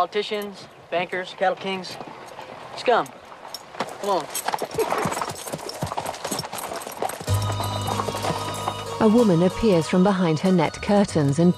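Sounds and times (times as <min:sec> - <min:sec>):
speech: 0:00.0 - 0:02.2, 0:02.8 - 0:03.2, 0:04.0 - 0:05.3, 0:09.0 - 0:11.5
horses' hooves clip-clopping as riders arrive in a town: 0:00.0 - 0:11.5.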